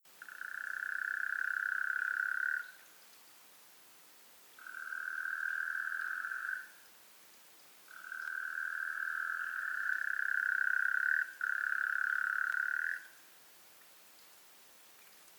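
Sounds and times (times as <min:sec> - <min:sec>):
Taipei tree frog calling: 0:00.2 - 0:03.0, 0:04.6 - 0:06.9, 0:07.9 - 0:13.3.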